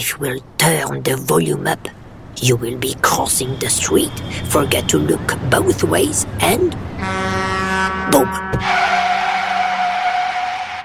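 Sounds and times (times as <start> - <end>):
speech: 0.0 - 9.0
truck tires screeching while skidding hard in a crash: 2.9 - 10.8.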